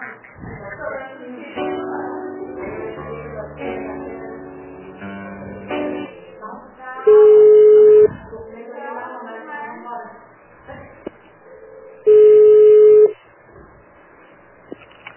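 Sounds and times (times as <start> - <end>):
faint voices on a telephone line: 0.0 - 14.0
short telephone beeps after a dropped call: 7.1 - 8.1, 12.1 - 13.1.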